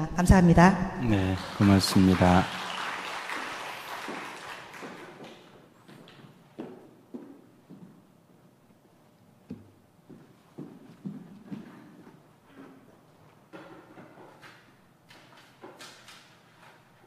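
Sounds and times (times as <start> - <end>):
speech: 0.0 - 2.6
crowd applauding: 1.0 - 5.6.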